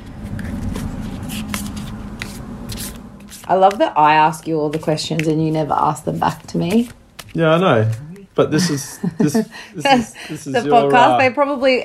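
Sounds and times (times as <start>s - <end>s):
steady hum: 0.0s - 11.8s
playing cards being handled at the start of a card game: 0.2s - 9.5s
speech: 3.5s - 11.8s
laughter: 8.4s - 11.2s.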